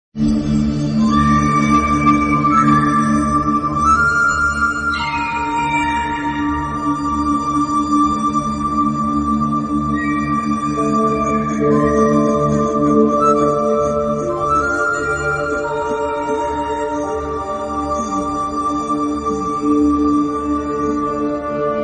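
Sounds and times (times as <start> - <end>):
flute background ringtone music: 0.6 - 21.8.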